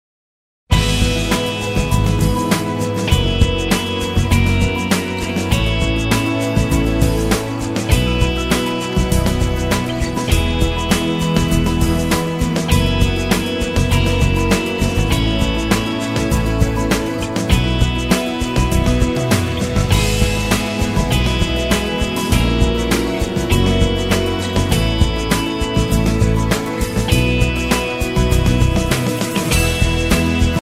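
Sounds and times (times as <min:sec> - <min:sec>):
music sample: 0:00.7 - 0:30.5.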